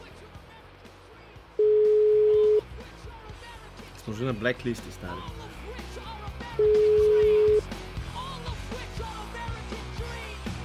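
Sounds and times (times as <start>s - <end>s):
telephone electronic beep: 1.6s - 2.6s, 6.6s - 7.7s
speech: 4.1s - 5.8s.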